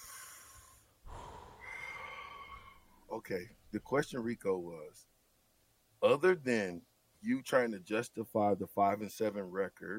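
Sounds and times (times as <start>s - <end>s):
man taking a deep breath: 0.0s - 3.1s
speech: 3.2s - 5.1s, 6.0s - 9.9s.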